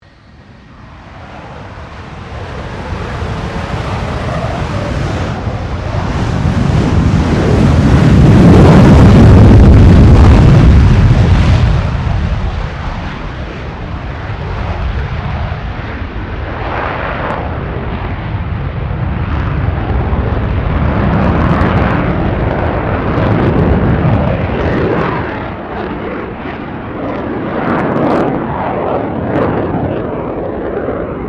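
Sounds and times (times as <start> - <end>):
RAAF FA-18E Super Hornet fighter jet taking off: 0.0 - 31.2.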